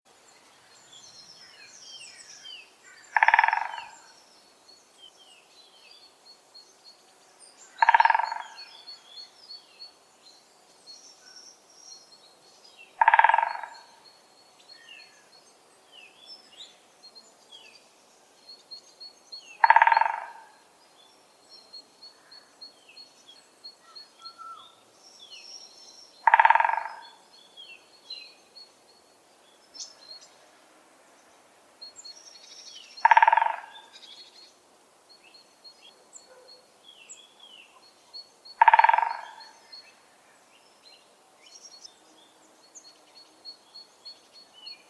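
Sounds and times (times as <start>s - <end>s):
great spotted woodpecker drumming: 3.1s - 4.0s, 7.8s - 8.6s, 13.0s - 13.9s, 19.6s - 20.5s, 26.2s - 27.2s, 33.0s - 33.9s, 38.6s - 39.5s.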